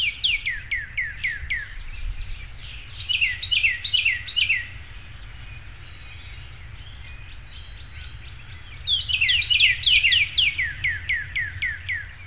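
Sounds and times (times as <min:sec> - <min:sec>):
male northern cardinal singing downslurred whistles: 0:00.0 - 0:01.8, 0:02.9 - 0:04.7, 0:06.9 - 0:12.1
low rumble of traffic: 0:00.0 - 0:12.2.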